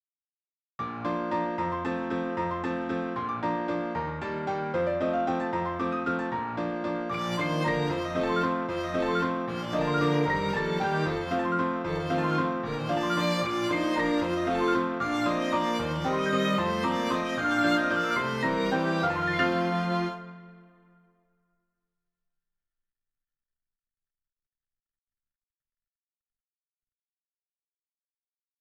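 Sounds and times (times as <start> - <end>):
piano trio playing: 0.8 - 20.7.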